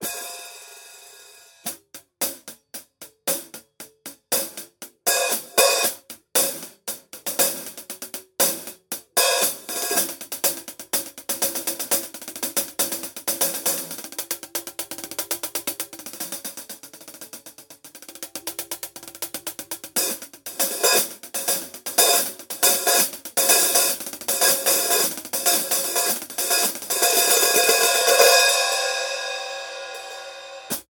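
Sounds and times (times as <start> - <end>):
Paiste PST8 hi-hat cymbal: 0.0 - 30.9.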